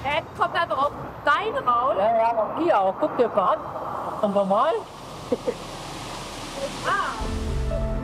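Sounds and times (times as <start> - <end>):
speech: 0.2 - 5.7
spring-fed river water rushing with a strong current: 3.7 - 7.9.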